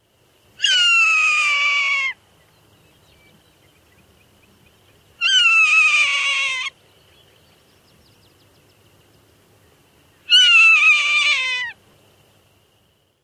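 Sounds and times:
Swainson's hawk calls: 0:00.6 - 0:02.2, 0:05.2 - 0:06.8, 0:10.2 - 0:11.8.

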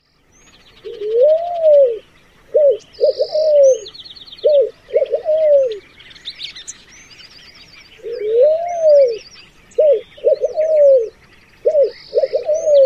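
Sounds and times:
red-billed pigeon cooing: 0:00.8 - 0:05.8, 0:08.0 - 0:09.2, 0:09.8 - 0:12.8.

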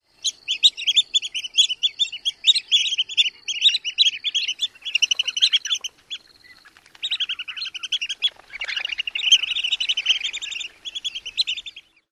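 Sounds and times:
Long-billed Dowitcher various calls: 0:00.2 - 0:12.1.

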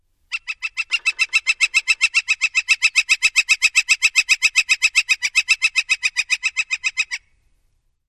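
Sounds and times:
red-shafted Northern Flicker kikikiki call: 0:00.3 - 0:07.4.

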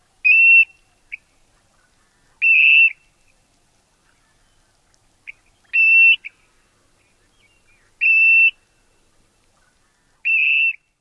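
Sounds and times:
Clark's Grebe kreeek or kree-eek calls: 0:00.2 - 0:03.1, 0:05.2 - 0:10.8.

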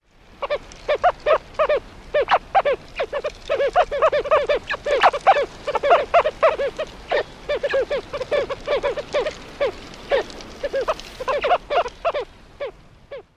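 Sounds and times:
social calls: 0:00.4 - 0:13.3.

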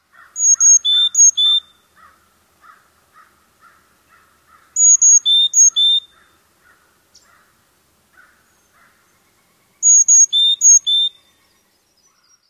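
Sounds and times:
Carolina Chickadee five-note song: 0:00.4 - 0:01.8, 0:04.8 - 0:06.2, 0:09.6 - 0:11.5.

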